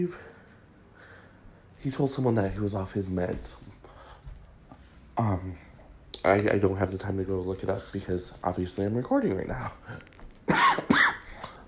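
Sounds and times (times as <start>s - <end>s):
speech: 0.0s - 0.3s, 1.8s - 3.8s, 5.2s - 11.0s
fairly loud rough cough: 10.5s - 11.6s.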